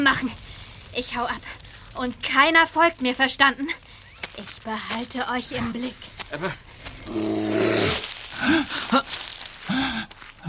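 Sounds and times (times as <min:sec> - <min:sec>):
speech: 0:00.0 - 0:10.1
bear roaring and growling: 0:06.8 - 0:08.8.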